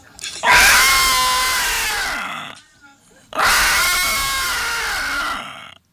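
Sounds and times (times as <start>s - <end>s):
elephant trumpet blasts: 0.4s - 2.6s, 3.4s - 5.6s.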